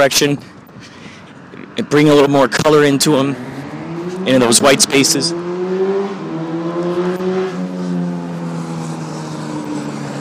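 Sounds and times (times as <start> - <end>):
speech: 0.0 - 0.9, 1.8 - 3.6, 4.2 - 5.5
cars racing up and down a street: 0.0 - 10.2.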